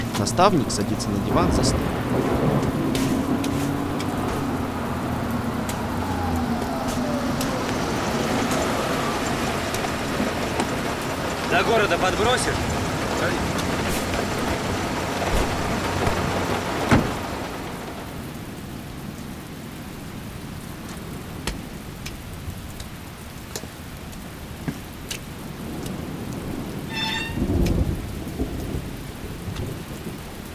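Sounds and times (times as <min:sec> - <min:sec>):
heavy rain downpour at night: 0:00.0 - 0:30.5
speech: 0:00.2 - 0:03.1, 0:11.5 - 0:13.5
thunder at night: 0:01.2 - 0:17.9, 0:25.7 - 0:30.2.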